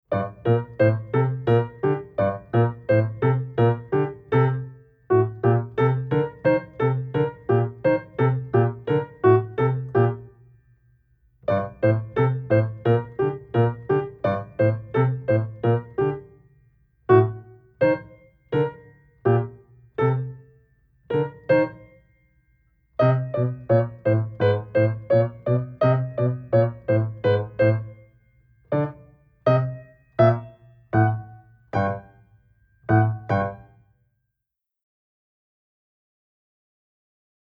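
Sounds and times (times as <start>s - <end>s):
staccato piano exercises: 0.1s - 10.4s, 11.5s - 16.4s, 17.1s - 20.4s, 21.1s - 22.0s, 23.0s - 28.0s, 28.7s - 32.2s, 32.9s - 33.7s.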